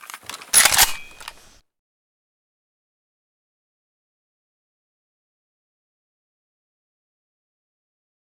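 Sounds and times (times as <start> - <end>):
AK74 rifle misfire: 0.2 - 1.6.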